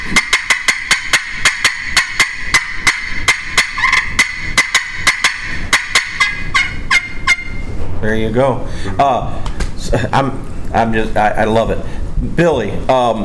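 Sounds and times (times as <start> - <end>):
excited turkey hen yelps made on a turkey call: 0.0 - 7.7
speech: 8.0 - 13.2.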